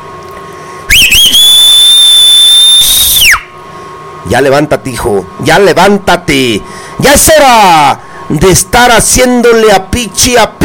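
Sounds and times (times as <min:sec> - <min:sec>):
loud piercing human whistle: 0:00.9 - 0:03.6
speech: 0:04.3 - 0:10.6.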